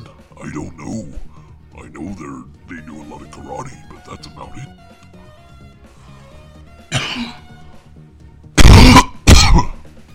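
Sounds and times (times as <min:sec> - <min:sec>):
speech: 0:00.5 - 0:05.2, 0:07.1 - 0:07.4
person coughing directly into the microphone: 0:06.9 - 0:07.5, 0:08.6 - 0:09.8.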